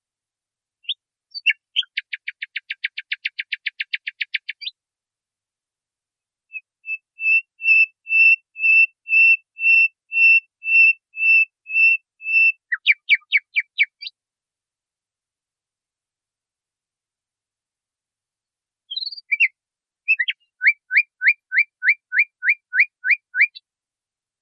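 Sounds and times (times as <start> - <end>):
nightingale song on a training recording for cage birds: 0.8 - 4.8, 6.5 - 14.2, 18.9 - 23.6.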